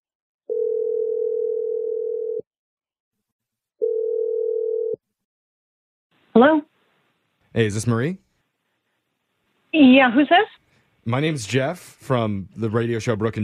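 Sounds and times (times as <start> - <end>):
telephone dial tone: 0.5 - 2.4, 3.8 - 5.0
speech: 6.4 - 6.7, 7.5 - 8.3, 9.7 - 13.4.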